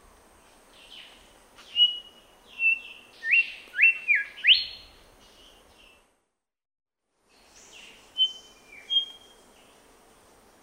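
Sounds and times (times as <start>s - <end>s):
grey whistler call in Papua New Guinea: 1.7s - 4.8s.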